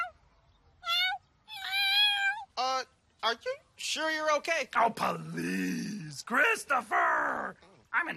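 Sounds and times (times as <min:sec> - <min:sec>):
domestic cat meowing: 0:00.8 - 0:02.5
speech: 0:03.3 - 0:08.1.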